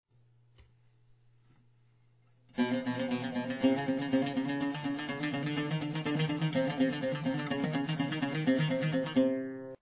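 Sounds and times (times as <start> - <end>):
oud left hand exercise: 2.5 - 9.8.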